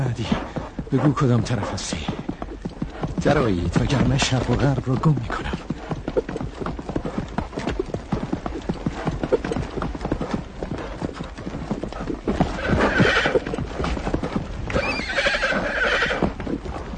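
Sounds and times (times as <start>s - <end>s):
speech: 0.0s - 2.2s, 3.2s - 5.6s
horse galloping with drumming hoofbeats: 0.0s - 16.9s
horse whinnying neighs: 12.4s - 13.6s, 14.7s - 16.4s.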